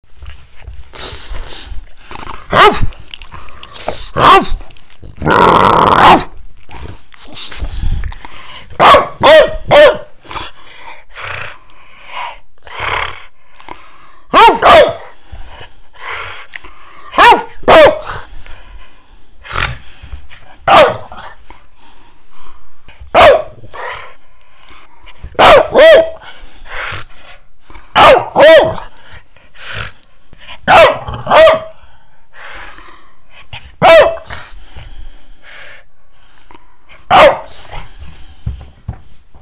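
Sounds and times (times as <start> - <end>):
large dog barking: 2.4 - 6.4, 8.8 - 10.5, 14.3 - 15.2, 17.1 - 18.3, 20.6 - 21.4, 23.1 - 24.1, 25.3 - 26.3, 27.9 - 29.0, 30.6 - 31.8, 33.8 - 34.4, 37.1 - 37.9.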